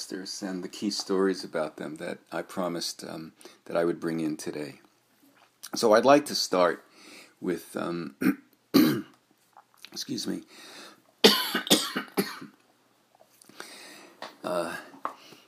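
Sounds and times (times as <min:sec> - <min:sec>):
speech: 0:00.0 - 0:04.8, 0:05.6 - 0:08.8, 0:09.9 - 0:10.8, 0:14.4 - 0:14.9
person with a recovering lung coughing: 0:08.2 - 0:09.2, 0:11.2 - 0:12.6.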